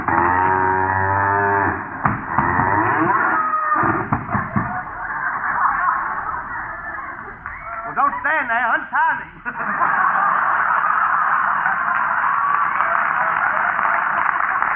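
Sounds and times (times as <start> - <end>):
cow mooing: 0.1 - 3.5
laughter: 3.4 - 14.6.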